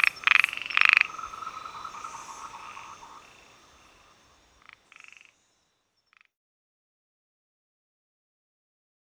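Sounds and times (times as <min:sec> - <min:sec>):
Heymons' narrow-mouthed frog Microhyla heymonsi pulsed calls: 0:00.0 - 0:06.3.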